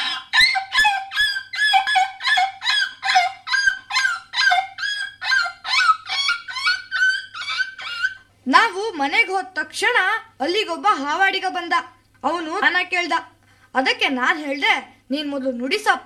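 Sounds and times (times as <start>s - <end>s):
puppy hit by an auto-rickshaw yelping and whimpering in pain: 0.0s - 8.3s
speech: 9.0s - 16.0s.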